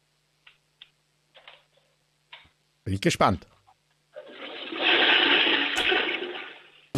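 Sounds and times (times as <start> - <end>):
speech: 2.9 - 3.6
toilet flushing: 4.2 - 6.9.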